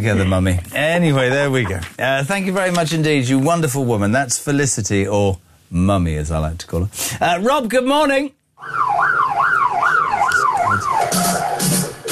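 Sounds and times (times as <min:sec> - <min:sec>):
speech: 0:00.0 - 0:08.8
emergency siren wailing: 0:08.6 - 0:12.0.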